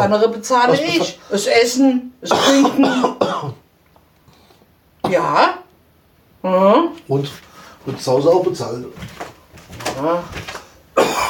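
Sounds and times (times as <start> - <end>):
speech: 0.0 - 3.6, 5.1 - 5.6, 6.4 - 9.3, 10.0 - 10.6
person with a scratchy throat coughing: 2.2 - 3.6, 11.0 - 11.2.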